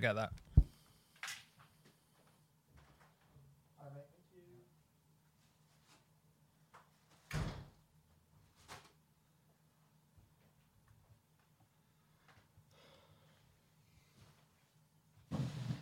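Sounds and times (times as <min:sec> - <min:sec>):
speech: 0:00.0 - 0:00.4
door opened and shut with a heavier clunk: 0:07.3 - 0:07.7.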